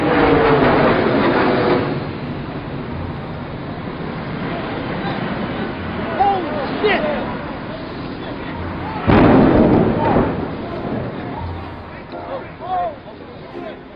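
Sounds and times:
loud broad roar: 0.0s - 12.1s
voices: 1.9s - 13.9s.

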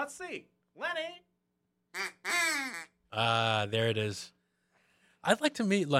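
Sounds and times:
speech: 0.0s - 1.3s, 1.9s - 4.4s, 5.2s - 5.9s
duck quacking outside a window: 2.0s - 2.9s.

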